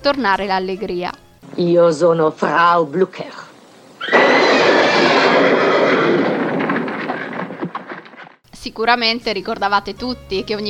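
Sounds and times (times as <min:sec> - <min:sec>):
speech: 0:00.0 - 0:03.5, 0:08.6 - 0:10.6
frightened horse whinnying shrilly: 0:04.0 - 0:08.1
scattered clattering: 0:04.2 - 0:08.4.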